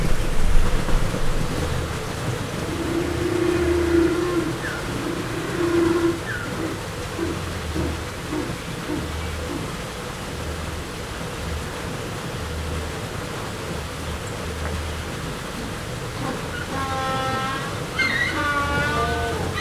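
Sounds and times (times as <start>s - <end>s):
adult spectacled penguins at a zoo: 0.0s - 9.7s, 15.6s - 19.5s
waterfall at a zoo: 0.0s - 19.5s.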